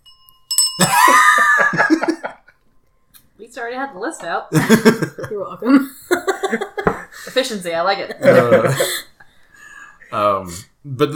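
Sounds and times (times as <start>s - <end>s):
small hand bell ringing: 0.0s - 1.8s
laughter: 0.8s - 2.5s, 4.5s - 7.4s, 8.1s - 9.1s
speech: 3.6s - 6.7s, 7.3s - 9.1s, 10.1s - 11.1s.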